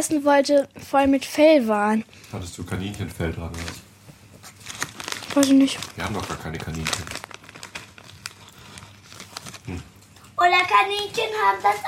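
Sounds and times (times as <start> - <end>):
speech: 0.0 - 3.9, 5.3 - 7.2, 9.7 - 11.8
crinkly potato chip bag rustling and crackling: 2.8 - 3.8, 4.4 - 11.8.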